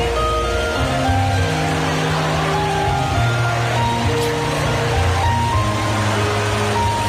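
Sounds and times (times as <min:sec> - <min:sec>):
rainwater cascading down inside a shopping mall: 0:00.0 - 0:07.0
sustained instrumental music played in a shopping mall: 0:00.0 - 0:07.0.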